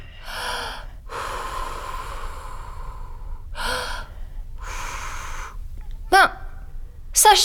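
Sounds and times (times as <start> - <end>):
quiet hiss of breathing: 0.0 - 5.6
speech: 7.2 - 7.4.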